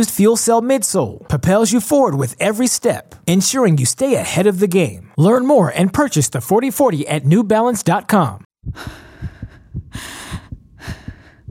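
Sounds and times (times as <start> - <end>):
speech: 0.0 - 9.0
rapid pounding heartbeat: 8.6 - 11.4
heavy ragged breathing: 8.7 - 11.4.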